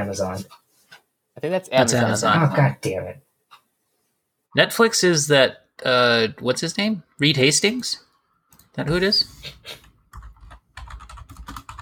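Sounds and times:
speech: 0:00.0 - 0:00.6, 0:01.4 - 0:03.2, 0:04.5 - 0:08.1, 0:08.8 - 0:09.8
typing on a computer keyboard: 0:09.8 - 0:11.7.

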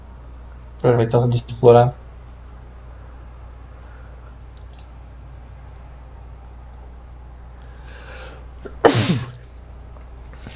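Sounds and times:
speech: 0:00.8 - 0:02.0
single sharp sneeze: 0:08.7 - 0:09.5.

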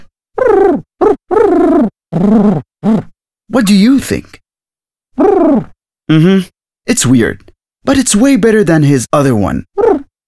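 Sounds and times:
man imitating a pigeon cooing to pigeons: 0:00.4 - 0:03.1, 0:05.2 - 0:06.5, 0:09.8 - 0:10.2
speech: 0:02.2 - 0:02.7, 0:03.6 - 0:04.4, 0:05.3 - 0:10.2.

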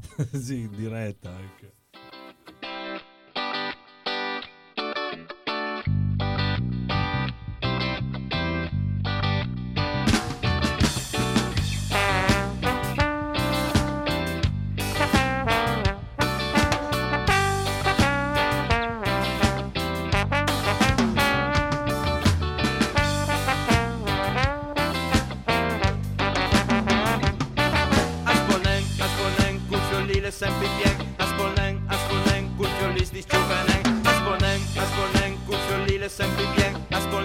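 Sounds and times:
laughter: 0:00.0 - 0:00.8
speech: 0:00.2 - 0:01.8
choppy staccato ska guitar chords: 0:02.5 - 0:37.2
ska bass: 0:05.8 - 0:37.2
ska drums: 0:10.0 - 0:37.2.

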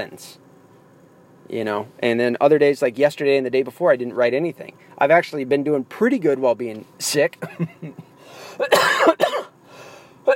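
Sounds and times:
speech: 0:00.0 - 0:00.4, 0:01.4 - 0:09.3
harsh cough: 0:08.5 - 0:09.6.

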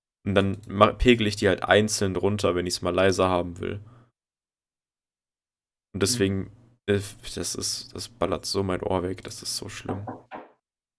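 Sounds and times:
speech: 0:00.2 - 0:03.9, 0:06.0 - 0:10.4
dull knock on a door: 0:09.9 - 0:10.6.

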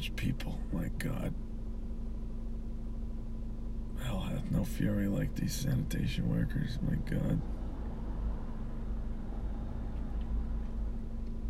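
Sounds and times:
speech: 0:00.0 - 0:01.5, 0:04.4 - 0:07.6
faint hum: 0:00.0 - 0:11.4
steady low rumble of street traffic: 0:00.0 - 0:11.4
cars passing at a distance on a street: 0:07.4 - 0:11.4.

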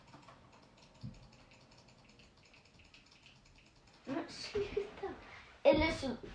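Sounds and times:
rapid computer mouse clicking: 0:00.0 - 0:04.1
speech: 0:04.3 - 0:06.3.

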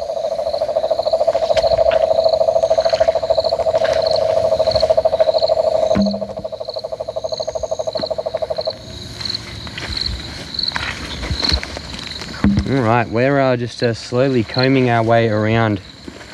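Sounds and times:
cane toads trilling in a breeding chorus: 0:00.0 - 0:12.5
high insect chirping: 0:00.0 - 0:16.3
speech: 0:12.9 - 0:15.9.

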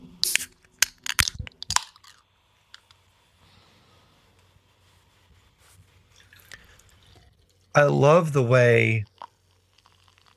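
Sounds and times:
can of peach hard cider cracking open: 0:00.2 - 0:02.9
faint low fizz of peach hard cider: 0:04.2 - 0:10.3
speech: 0:07.8 - 0:09.1.

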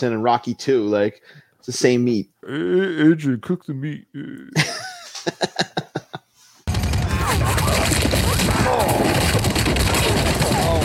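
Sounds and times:
speech: 0:00.0 - 0:05.7
laughter: 0:04.4 - 0:06.3, 0:07.0 - 0:08.4
.50 caliber machine gun firing in a video game: 0:06.7 - 0:10.8.

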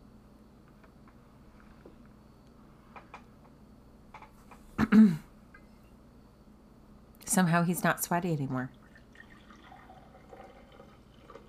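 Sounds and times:
speech: 0:04.9 - 0:05.2, 0:07.4 - 0:08.8
wine poured into a glass: 0:08.7 - 0:11.4.

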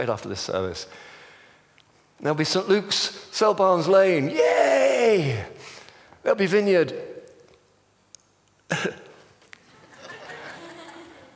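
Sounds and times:
speech: 0:00.0 - 0:01.2, 0:02.2 - 0:07.1, 0:08.7 - 0:09.0
single sharp cough in a large room: 0:08.7 - 0:09.1
laughter: 0:09.7 - 0:11.3.

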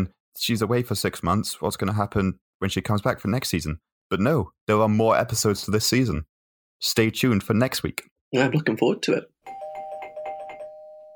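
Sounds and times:
speech: 0:00.0 - 0:09.3
doorbell chime sound effect: 0:09.4 - 0:11.1.

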